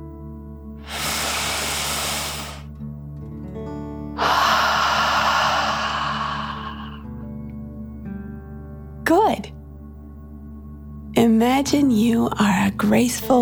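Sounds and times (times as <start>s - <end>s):
forceful exhale through the mouth: 0.8s - 2.7s, 4.2s - 7.1s
long airy breath in through the nose: 0.8s - 2.7s, 4.2s - 7.1s
speech: 11.2s - 13.4s.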